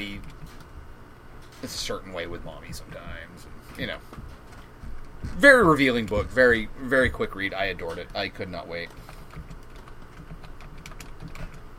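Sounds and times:
speech: 0:01.6 - 0:04.4, 0:05.2 - 0:09.1
fingers typing on a computer keyboard: 0:08.8 - 0:11.7.

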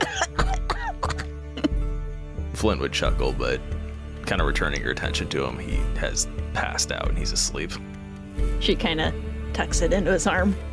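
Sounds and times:
person coughing after a drink from a flask: 0:00.0 - 0:01.8
throat clearing: 0:00.0 - 0:01.8
speech: 0:02.6 - 0:03.7, 0:04.3 - 0:10.7.

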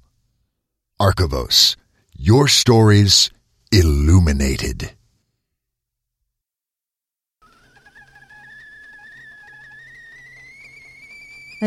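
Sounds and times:
speech: 0:01.0 - 0:05.0
kettle whistling as water boils: 0:07.4 - 0:11.6.

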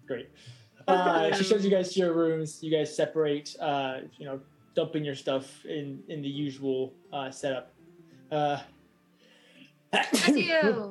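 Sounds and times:
speech: 0:00.1 - 0:07.7, 0:08.3 - 0:08.8, 0:09.9 - 0:10.8
voiced inhale before a sneeze: 0:00.3 - 0:00.8, 0:09.2 - 0:09.8
sneeze: 0:10.0 - 0:10.5.

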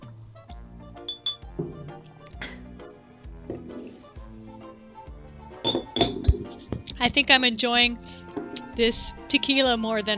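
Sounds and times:
shot glasses clinking in a toast: 0:01.0 - 0:04.7, 0:05.5 - 0:06.9
speech: 0:07.0 - 0:08.1, 0:08.8 - 0:10.1.

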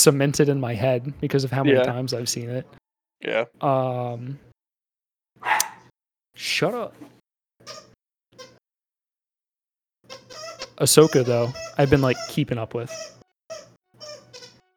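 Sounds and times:
speech: 0:00.0 - 0:04.5, 0:06.4 - 0:07.9, 0:10.8 - 0:13.7
female pet cat squeaking: 0:05.4 - 0:05.8, 0:07.6 - 0:08.6, 0:10.1 - 0:14.7.

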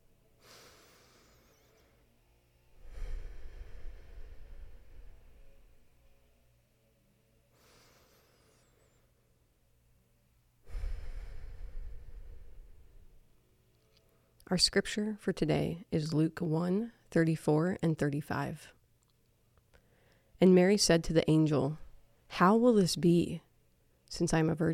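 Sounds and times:
slow deep breathing: 0:00.4 - 0:02.1, 0:02.7 - 0:05.9, 0:07.5 - 0:09.2, 0:10.6 - 0:13.2
speech: 0:14.5 - 0:18.8, 0:20.4 - 0:23.5, 0:24.1 - 0:24.7.

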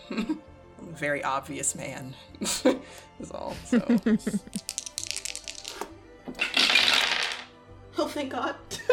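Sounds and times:
speech: 0:00.1 - 0:00.4, 0:01.0 - 0:04.8, 0:08.2 - 0:08.8
dice clattering across a hard surface: 0:04.5 - 0:07.5.

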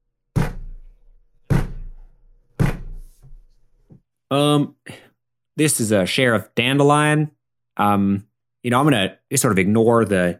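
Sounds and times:
heavy knocks on a door: 0:01.5 - 0:02.0, 0:02.6 - 0:03.0
speech: 0:04.3 - 0:10.3.

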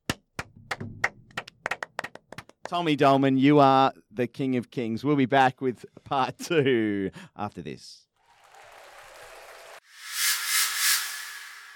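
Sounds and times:
people clapping: 0:00.1 - 0:02.8, 0:08.2 - 0:09.8
speech: 0:02.7 - 0:08.1.

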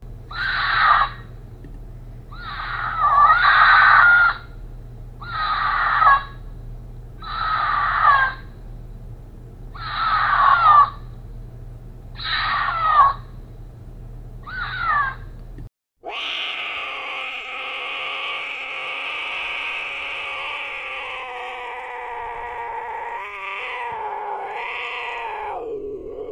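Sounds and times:
mountain lion screaming: 0:00.0 - 0:18.3.

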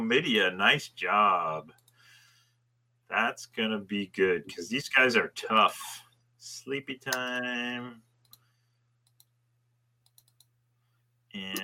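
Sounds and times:
speech: 0:00.0 - 0:01.8, 0:03.1 - 0:08.1, 0:11.4 - 0:11.6
low electrical hum: 0:00.0 - 0:11.6
computer mouse clicks: 0:08.2 - 0:09.4, 0:10.0 - 0:10.5.

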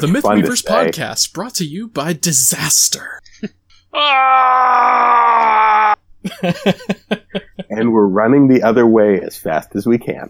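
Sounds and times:
person talking quickly: 0:00.0 - 0:03.2, 0:07.6 - 0:10.2
speech: 0:00.0 - 0:06.9, 0:07.8 - 0:10.2
person mock screaming at the word of the day: 0:03.9 - 0:06.0
laughter: 0:06.2 - 0:08.0.

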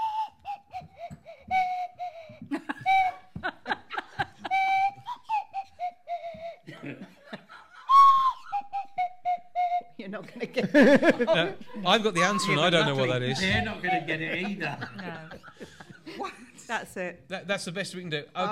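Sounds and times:
swanee slide whistle playing a wobbly tune: 0:00.0 - 0:03.4, 0:04.2 - 0:06.4, 0:07.8 - 0:10.0
people laughing and chuckling: 0:02.4 - 0:05.1, 0:06.7 - 0:08.0, 0:10.2 - 0:16.6
speech: 0:10.6 - 0:15.2, 0:16.7 - 0:18.5.

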